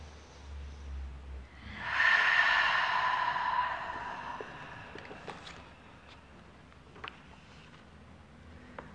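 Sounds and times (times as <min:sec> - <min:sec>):
deep breath in during a guided relaxation and breathing exercise: 0:01.5 - 0:06.4.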